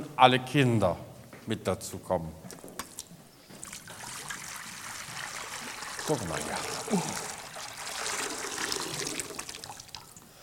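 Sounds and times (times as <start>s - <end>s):
speech: 0.2s - 2.6s, 6.1s - 7.3s
water dripping: 2.5s - 10.3s
water pouring into a baptismal bowl for a baptism: 3.6s - 10.3s.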